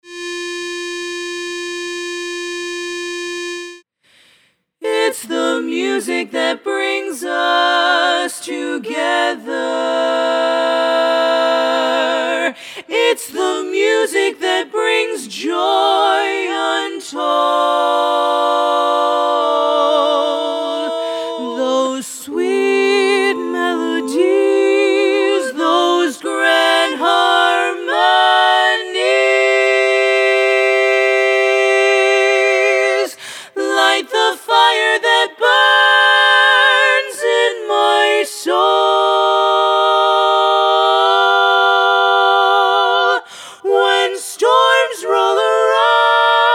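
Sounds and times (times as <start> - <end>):
choral learning track: 4.8 - 46.5.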